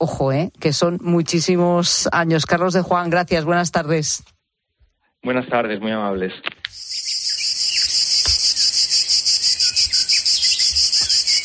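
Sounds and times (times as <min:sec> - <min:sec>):
speech: 0:00.0 - 0:04.3, 0:05.2 - 0:07.2
cicada buzzing: 0:06.7 - 0:11.4
faint bird chirps: 0:06.7 - 0:11.4.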